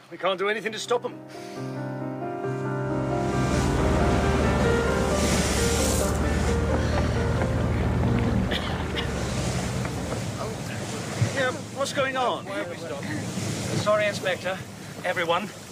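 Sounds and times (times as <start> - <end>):
wind and spray: 0.0 - 15.6
speech: 0.1 - 1.8, 11.8 - 15.6
public ferry engine droning: 1.3 - 11.8
water churning and splashing along a ferry hull: 2.9 - 15.6.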